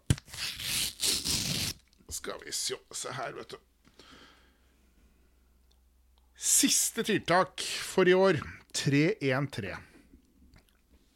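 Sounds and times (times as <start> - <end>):
paper being torn open from a calendar gift: 0.1 - 1.8
speech: 2.2 - 3.7, 6.6 - 9.9.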